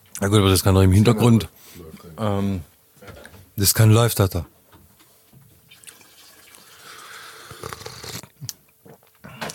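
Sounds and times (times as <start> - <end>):
speech: 0.2 - 2.7, 3.6 - 4.6
water heating toward a boil with hiss and bubbling: 5.7 - 8.3.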